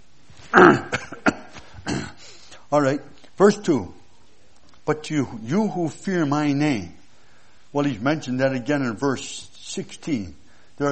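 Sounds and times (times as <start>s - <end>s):
speech: 0.5s - 0.9s, 2.7s - 4.0s, 4.9s - 7.0s, 7.7s - 10.9s
person clearing throat: 0.5s - 2.2s.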